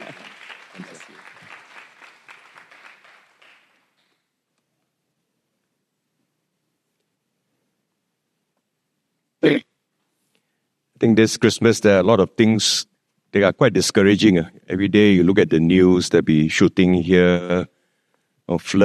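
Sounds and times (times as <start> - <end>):
audience applauding to welcome a speaker: 0.0 - 4.1
speech: 11.0 - 17.8, 18.5 - 18.8.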